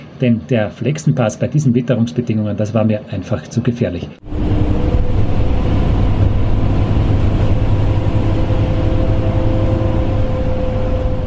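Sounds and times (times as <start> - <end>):
speech: 0.2 - 4.7
bus engine droning while driving, heard from inside: 4.2 - 11.2.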